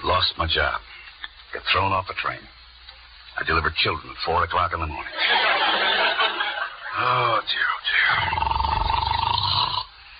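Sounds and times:
speech: 0.0 - 2.6, 3.4 - 5.8, 7.0 - 8.6
laughter: 5.1 - 7.4
person snoring asleep in bed: 7.0 - 9.9.

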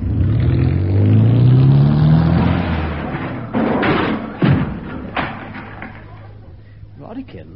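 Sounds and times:
car engine starting and revving: 0.0 - 3.8
car driving into a closed garage door with heavy thuds: 2.4 - 6.3.

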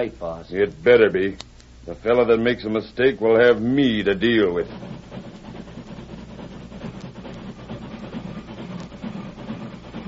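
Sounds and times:
speech: 0.0 - 5.2
train rumbling on rails: 2.0 - 10.0.

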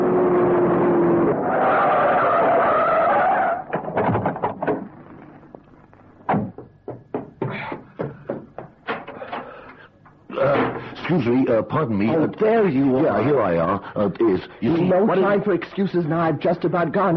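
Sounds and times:
car tires squealing and skidding: 0.0 - 4.1
car engine roaring: 0.0 - 5.3
sharp knocks and thumps: 3.7 - 5.6, 6.2 - 10.9
speech: 11.2 - 17.1.

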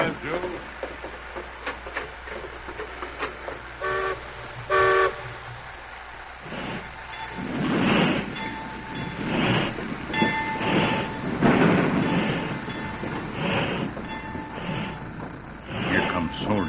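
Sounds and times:
faint clanking and ticking: 0.0 - 16.6
steam-like hiss: 0.0 - 16.6
train whistle blasts as a highball departure signal: 3.8 - 5.4, 15.7 - 16.6.

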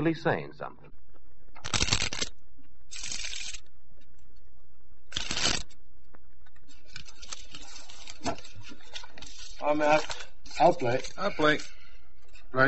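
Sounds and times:
speech: 0.0 - 0.9, 9.6 - 11.8
playing cards being shuffled for a poker game: 1.6 - 3.7, 5.1 - 11.3.

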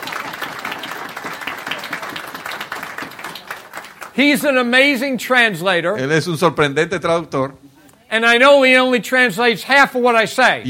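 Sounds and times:
church congregation applauding: 0.0 - 5.1
speech: 4.2 - 10.6.

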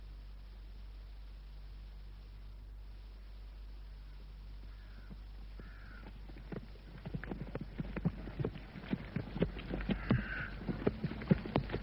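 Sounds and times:
low hum: 0.0 - 11.8
horses cantering with clip-clop hoofbeats: 5.0 - 11.8.

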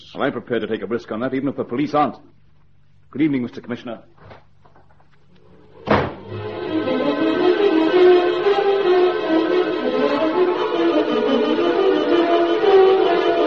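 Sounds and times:
speech: 0.1 - 2.4, 3.1 - 4.4
door slamming shut: 5.8 - 6.3
sustained musical chord: 6.2 - 13.4.

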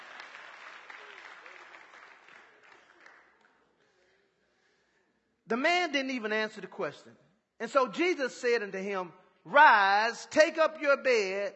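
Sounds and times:
congregation applauding: 0.0 - 3.8
speech: 5.5 - 11.5.

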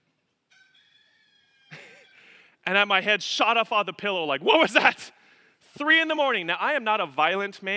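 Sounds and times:
rooster crowing at a house in a Colorado farming community: 0.5 - 2.4
speech: 2.7 - 5.2, 5.8 - 7.7.

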